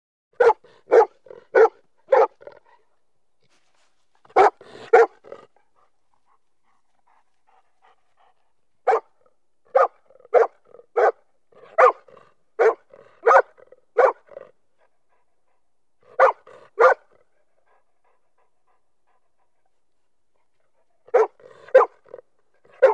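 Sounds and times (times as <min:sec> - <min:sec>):
golden lab retriever barking: 0:00.3 - 0:02.6, 0:04.3 - 0:05.5, 0:08.8 - 0:14.5, 0:16.1 - 0:17.2, 0:21.0 - 0:22.9.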